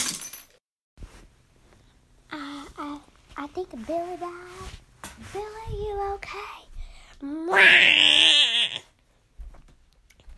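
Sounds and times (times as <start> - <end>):
brief soft rustle: 3.2 - 6.4
speech: 3.6 - 8.5
cat yowling: 7.5 - 8.8.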